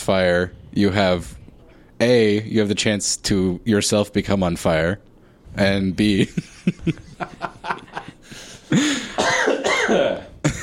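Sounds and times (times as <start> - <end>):
speech: 0.0 - 1.4, 2.0 - 10.2
person chuckling: 6.3 - 10.6
person coughing: 8.7 - 10.6.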